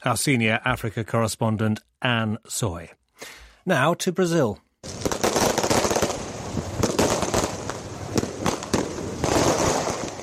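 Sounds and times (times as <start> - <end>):
speech: 0.0 - 5.0
fireworks crackling and popping outside a hospital in São Paulo, Brazil: 4.8 - 10.2.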